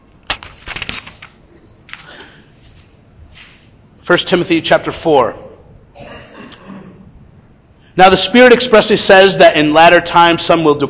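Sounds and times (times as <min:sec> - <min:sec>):
thin Bible pages being flipped: 0:00.2 - 0:03.7
speech: 0:04.1 - 0:05.4, 0:08.0 - 0:10.8.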